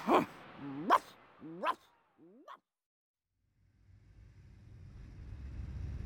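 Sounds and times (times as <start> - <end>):
dog barking: 0.0 - 2.6.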